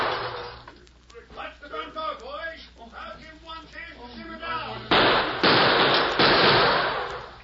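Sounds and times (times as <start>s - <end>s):
gunfire sound effect in an old western radio drama: 4.9s - 7.2s.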